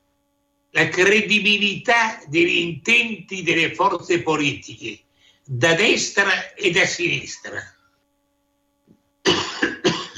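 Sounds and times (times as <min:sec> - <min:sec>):
speech: 0:00.7 - 0:07.8
man coughing harshly: 0:09.3 - 0:10.1.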